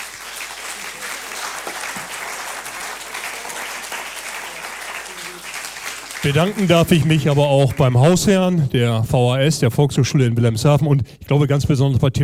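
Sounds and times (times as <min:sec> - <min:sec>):
large audience applause for the candidates: 0:00.0 - 0:08.5
speech: 0:06.2 - 0:12.2.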